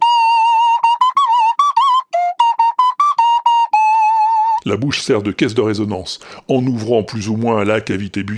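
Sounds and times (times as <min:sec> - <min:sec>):
nose whistle playing a bright pure-toned melody: 0:00.0 - 0:04.6
speech: 0:04.7 - 0:08.3.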